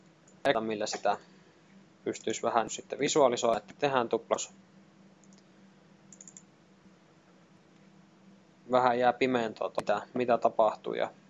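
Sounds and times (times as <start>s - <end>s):
steady low electrical hum: 0.0s - 11.2s
speech: 0.4s - 1.4s, 2.0s - 4.7s, 8.7s - 11.2s
computer mouse clicks: 5.2s - 5.5s, 6.1s - 6.5s.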